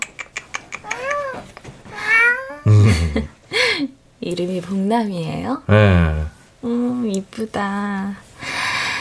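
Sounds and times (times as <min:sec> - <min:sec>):
cat meowing: 0:00.8 - 0:01.4, 0:02.0 - 0:02.7
laughter: 0:02.7 - 0:03.3
speech: 0:02.7 - 0:08.3.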